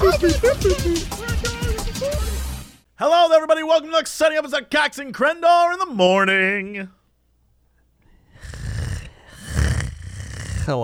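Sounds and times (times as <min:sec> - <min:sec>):
laughter: 0:00.0 - 0:02.4
speech: 0:00.2 - 0:01.5, 0:03.0 - 0:07.0, 0:10.6 - 0:10.8
loud snores: 0:08.3 - 0:10.8.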